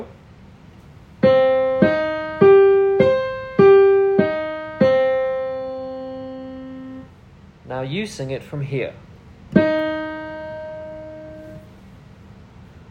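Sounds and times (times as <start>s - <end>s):
minor chord arpeggio: 1.2s - 7.1s, 9.6s - 11.7s.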